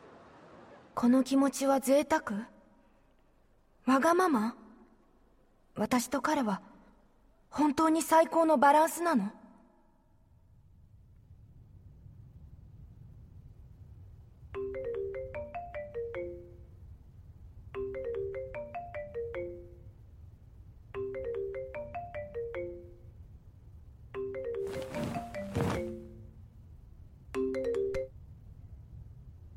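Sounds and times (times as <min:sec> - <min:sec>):
speech: 0:01.0 - 0:02.5, 0:03.9 - 0:04.6, 0:05.8 - 0:06.7, 0:07.5 - 0:09.4
phone's melodic ringtone: 0:17.8 - 0:19.8, 0:21.0 - 0:23.0, 0:24.2 - 0:26.3, 0:27.4 - 0:28.1.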